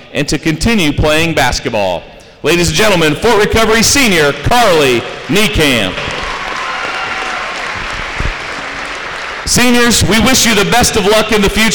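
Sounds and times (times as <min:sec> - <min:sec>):
speech: 0:00.1 - 0:06.2, 0:09.5 - 0:11.7
audience applause for senior athletes: 0:05.0 - 0:10.2
people cheering: 0:05.1 - 0:10.7.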